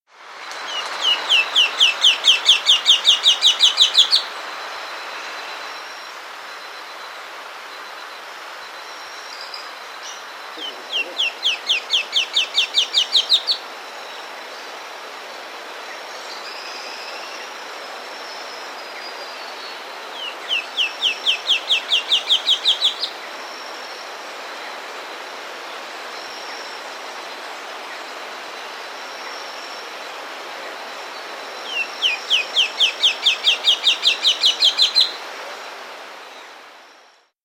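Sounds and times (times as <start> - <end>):
Rufous Gnateater calling in South America: 0.7 - 4.3, 10.6 - 13.6, 20.2 - 23.2, 31.7 - 35.2.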